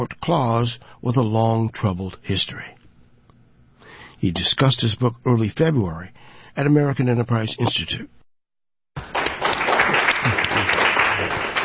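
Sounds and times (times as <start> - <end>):
speech: 0.0 - 2.8, 4.2 - 8.2
crowd applauding at a book discussion: 9.0 - 11.6.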